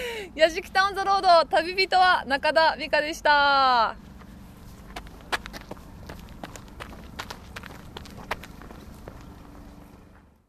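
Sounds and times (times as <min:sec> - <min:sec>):
constant hum: 0:00.0 - 0:10.4
speech: 0:00.3 - 0:04.1
footsteps of a person running in Tokyo: 0:04.2 - 0:10.4.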